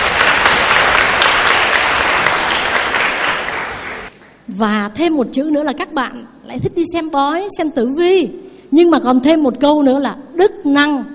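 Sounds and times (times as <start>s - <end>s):
audience applause: 0.0s - 4.2s
speech: 4.6s - 11.1s.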